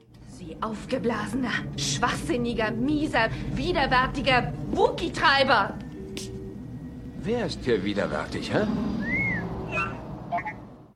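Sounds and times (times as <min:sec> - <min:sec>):
low rumble: 0:00.0 - 0:10.9
speech: 0:00.4 - 0:05.8, 0:07.2 - 0:09.0
robot droid giving electronic whistles: 0:09.0 - 0:10.6.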